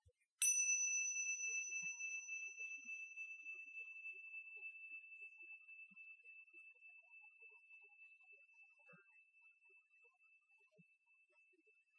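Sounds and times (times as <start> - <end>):
meditation bell struck and ringing: 0.4 - 6.9.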